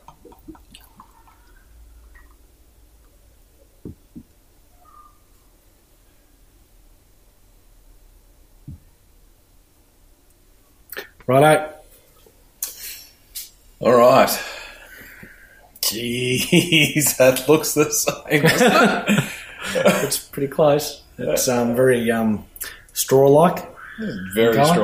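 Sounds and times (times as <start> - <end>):
Löwenbräu beer pouring into a glass: 0.0 - 2.4
soft drips and clicks: 0.0 - 4.4
speech: 11.3 - 11.7, 16.5 - 24.8
laughter: 16.1 - 20.3.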